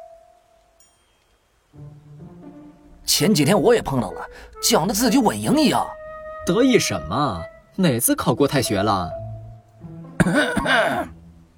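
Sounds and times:
speech: 3.1s - 9.2s, 10.2s - 11.2s
teacher coughing in a classroom: 10.2s - 11.2s.

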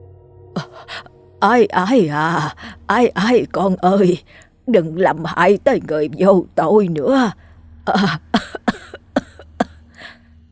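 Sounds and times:
speech: 0.8s - 8.6s
old woman's violent coughing fit: 7.9s - 10.1s.

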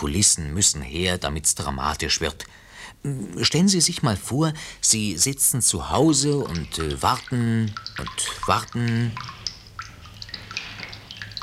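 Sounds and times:
speech: 0.0s - 9.4s
water dripping from a leaky household tap: 5.0s - 11.4s.

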